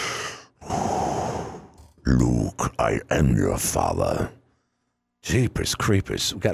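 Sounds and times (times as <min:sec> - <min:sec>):
heavy breathing into a microphone: 0:00.0 - 0:01.8
speech: 0:02.1 - 0:04.4, 0:05.2 - 0:06.5.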